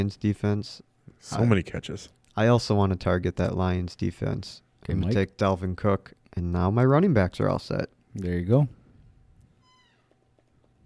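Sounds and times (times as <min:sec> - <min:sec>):
speech: 0:00.0 - 0:08.8
low hum: 0:00.0 - 0:10.8
cat meowing: 0:09.6 - 0:10.2.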